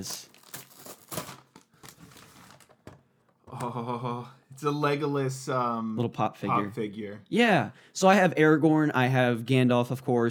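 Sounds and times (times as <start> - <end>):
speech: 0.0 - 0.3, 3.6 - 10.2
paper gift wrapping ripped off a moderate-sized box: 0.0 - 2.9.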